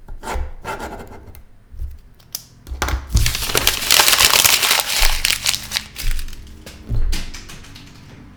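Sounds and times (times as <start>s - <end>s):
paper: 3.1s - 7.9s.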